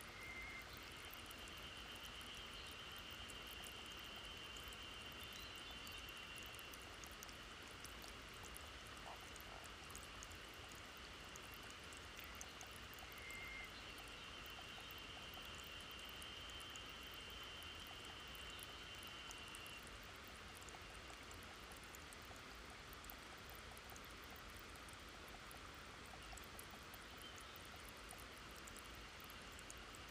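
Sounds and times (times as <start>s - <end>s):
faint bird chirps: 0.0s - 7.2s, 11.3s - 19.9s, 26.1s - 28.1s
water seeping and trickling from rock in a green forest: 0.0s - 30.1s.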